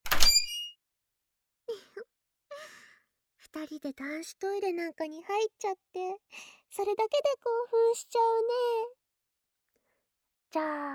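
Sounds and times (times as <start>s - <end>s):
door opening with a clunk and a metallic creak: 0.0s - 0.8s
speech: 3.6s - 9.0s, 10.5s - 10.9s.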